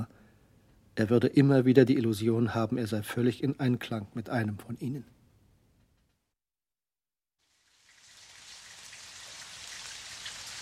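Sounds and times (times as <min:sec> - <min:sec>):
speech: 0:01.0 - 0:05.2
rain falling in a steady downpour: 0:07.5 - 0:10.6.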